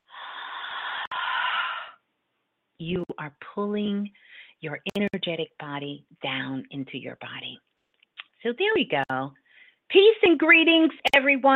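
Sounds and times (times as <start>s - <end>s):
slow breathing in and out: 0.0s - 2.0s, 4.2s - 4.6s, 9.4s - 9.9s
speech: 2.8s - 7.7s, 8.4s - 11.5s.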